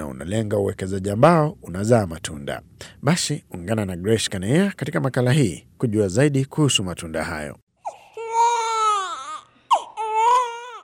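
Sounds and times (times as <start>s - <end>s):
speech: 0.2s - 7.6s
one-day-old newborn crying at a health facility in Samburu County Kenya: 7.8s - 10.8s.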